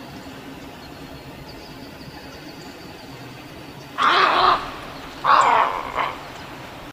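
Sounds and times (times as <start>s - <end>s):
snowy egret giving harsh raspy croaks: 4.0s - 6.9s.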